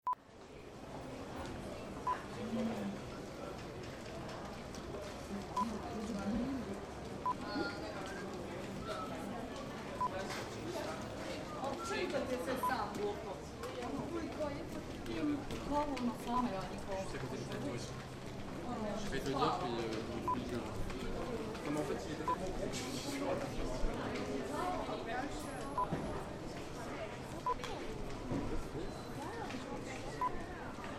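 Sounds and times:
street alleyway ambience in Dubrovnik: 0.2 - 30.9.

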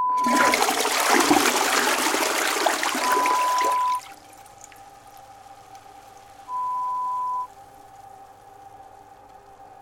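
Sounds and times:
toilet flushing: 0.1 - 7.5.

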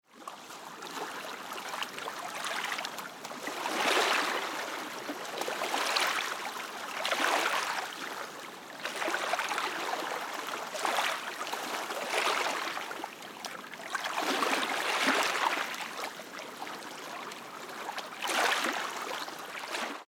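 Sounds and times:
lake shore ambience at Lake Te Anau: 0.2 - 20.0.

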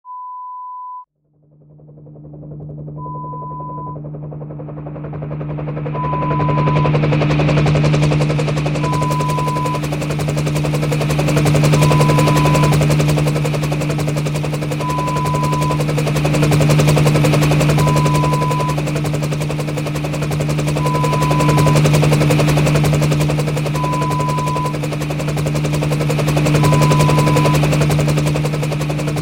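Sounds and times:
helicopter: 1.2 - 29.2.

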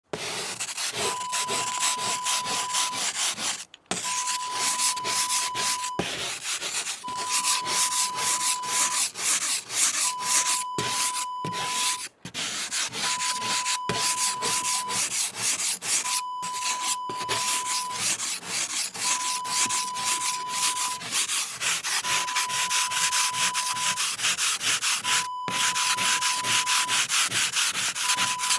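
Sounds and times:
scraping ice: 0.2 - 28.5.

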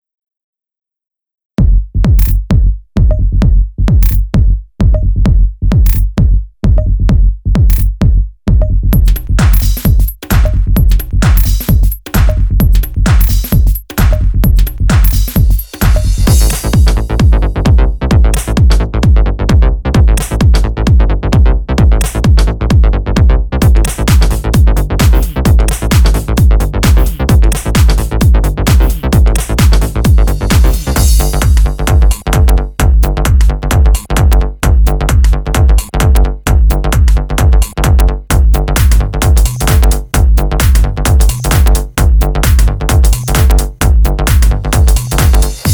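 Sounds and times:
tech trance groove: 1.6 - 45.7.

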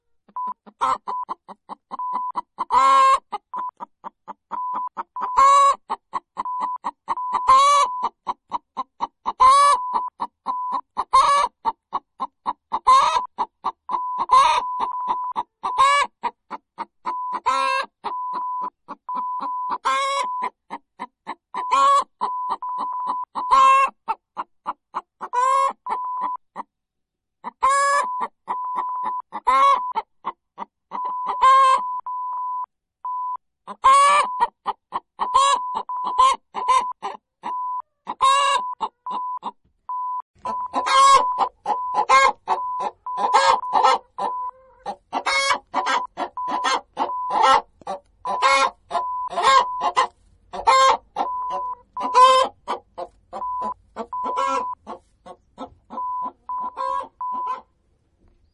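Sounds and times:
chicken clucking while laying an egg: 0.0 - 26.7, 27.4 - 32.1, 33.6 - 39.6, 40.4 - 58.5.

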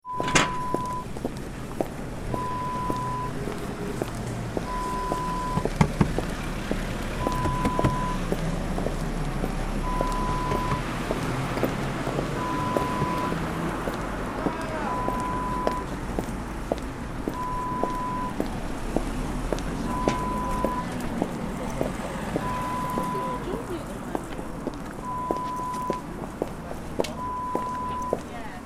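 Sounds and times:
footsteps walking through town: 0.6 - 23.4, 24.0 - 28.3.

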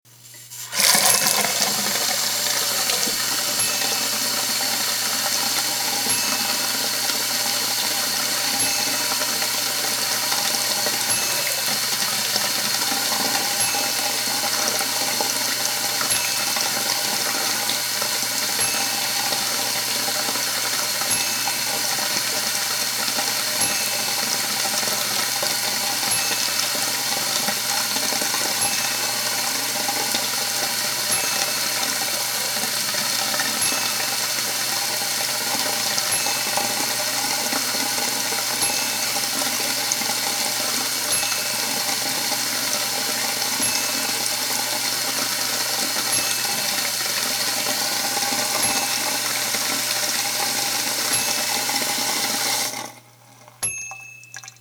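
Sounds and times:
bathroom sink: 0.1 - 54.5.

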